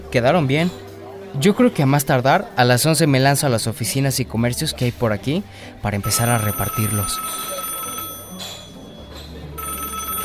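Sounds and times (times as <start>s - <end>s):
speech: 0.1s - 7.5s
telephone ringing in a small inexpensive family eatery: 6.0s - 10.2s.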